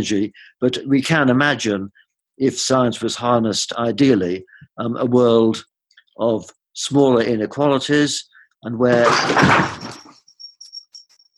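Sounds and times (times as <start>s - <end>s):
speech: 0.0s - 9.9s
clattering crash of an object toppling: 8.9s - 10.2s.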